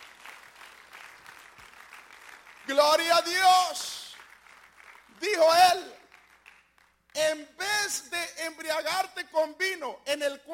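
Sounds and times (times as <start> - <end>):
congregation applauding during an evening church service: 0.0 - 7.4
speech: 2.7 - 4.0, 5.2 - 6.0, 7.2 - 10.5.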